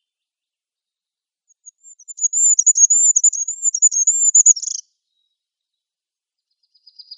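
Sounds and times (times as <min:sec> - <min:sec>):
goldcrest singing: 0:01.5 - 0:05.7, 0:06.6 - 0:07.1.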